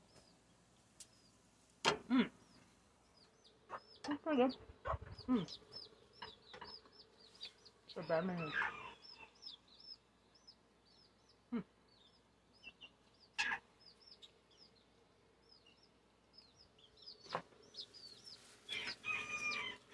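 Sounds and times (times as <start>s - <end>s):
baby chicks peeping: 0.0s - 1.4s, 2.1s - 19.9s
speech: 4.3s - 5.8s, 8.0s - 8.8s
rustling: 18.3s - 19.0s.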